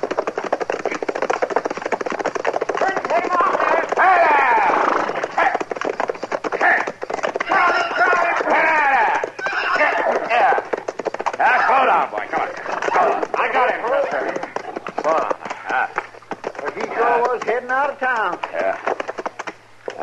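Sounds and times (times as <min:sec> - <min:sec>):
runaway horse galloping: 0:00.0 - 0:20.0
voices calling out: 0:02.8 - 0:05.7, 0:06.5 - 0:18.9.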